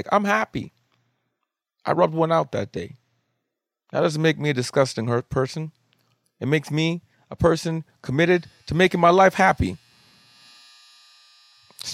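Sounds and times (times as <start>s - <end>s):
speech: 0.0s - 0.8s, 1.8s - 3.0s, 3.9s - 5.8s, 6.4s - 9.8s
clothes dryer end-of-cycle buzzer: 8.3s - 11.9s.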